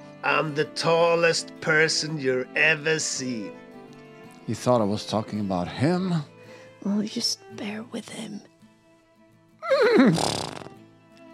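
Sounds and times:
speech: 0.2s - 3.6s, 4.5s - 8.5s, 9.8s - 10.5s
horse neighing: 9.6s - 10.8s
horse breathy snort: 10.0s - 10.8s.

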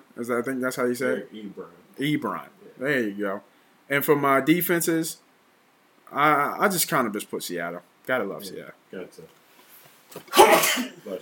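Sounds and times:
speech: 0.2s - 5.2s, 6.1s - 9.4s, 10.1s - 11.2s
person sneezing: 10.2s - 11.1s.

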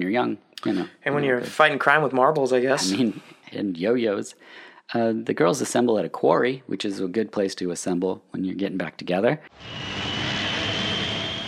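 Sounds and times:
speech: 0.0s - 9.9s
helicopter arriving at a quarry: 9.5s - 11.4s.

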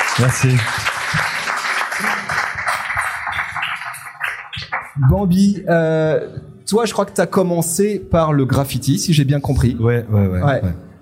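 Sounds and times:
audience clapping for a mural artist: 0.0s - 5.0s
speech: 0.2s - 1.4s, 5.0s - 10.8s.

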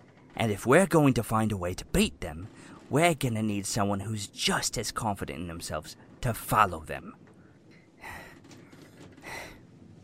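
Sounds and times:
speech: 0.4s - 7.2s
woman breathing slowly catching her breath: 7.4s - 10.0s.

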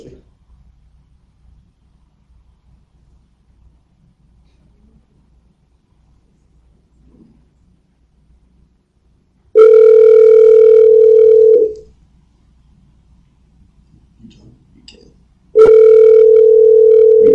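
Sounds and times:
faint noise on a phone line: 0.0s - 17.3s
electronic ringback tones on a phone line: 9.6s - 11.8s, 15.6s - 17.3s.

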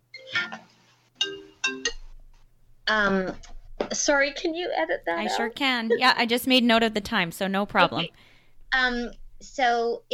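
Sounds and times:
phone ringtone playing a short bright melodic phrase: 0.1s - 2.0s
speech: 2.9s - 10.1s.

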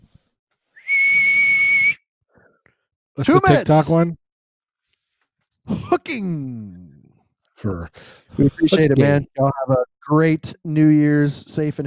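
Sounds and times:
referee whistle blast: 0.8s - 2.0s
speech: 3.2s - 4.2s, 5.7s - 6.8s, 7.6s - 11.8s.

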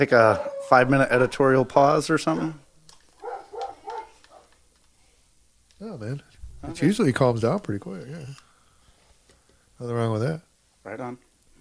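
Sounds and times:
speech: 0.0s - 2.6s, 5.9s - 8.5s, 9.8s - 11.3s
dogs barking: 0.2s - 2.6s, 3.2s - 4.6s.

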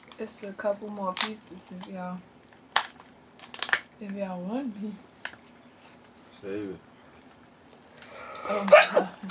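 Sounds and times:
speech: 0.2s - 2.3s, 4.0s - 5.1s, 6.4s - 6.9s, 8.5s - 9.2s
person sneezing: 8.4s - 9.2s.

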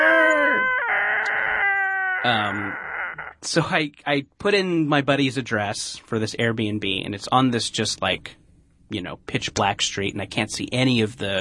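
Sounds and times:
person imitating a giant monster roar: 0.0s - 3.4s
speech: 2.2s - 2.8s, 3.4s - 11.4s.

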